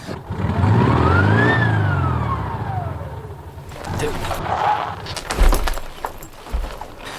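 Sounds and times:
car engine whining up, winding down and stalling: 0.0 - 7.1
sputtering knocks and clunks of the car engine: 3.3 - 7.1.

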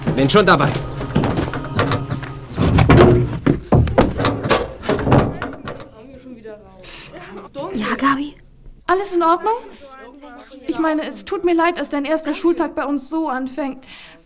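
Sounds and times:
heavy furniture van door shutting: 0.0 - 6.0
light knocks and rattles: 0.0 - 6.2
voices: 0.0 - 12.8
speech: 0.2 - 0.9, 8.0 - 8.3, 8.9 - 9.7, 10.8 - 14.1.

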